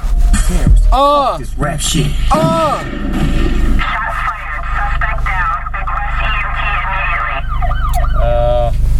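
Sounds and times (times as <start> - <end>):
voices: 0.3 - 7.6
speech: 0.5 - 3.6
emergency vehicle siren wailing: 5.4 - 8.7.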